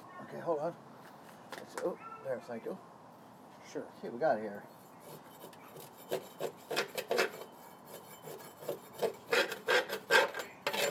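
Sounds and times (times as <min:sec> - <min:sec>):
speech: 0:00.3 - 0:00.9, 0:01.7 - 0:02.9, 0:03.7 - 0:06.9
tool scraping caked crud off metal lawnmower underside: 0:04.8 - 0:10.8.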